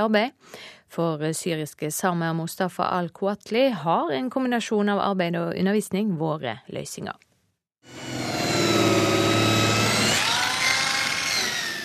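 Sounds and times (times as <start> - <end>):
speech: 0.0 - 8.2
sanding machines smoothing a garage door section in a furniture workshop in Norway: 7.9 - 11.8.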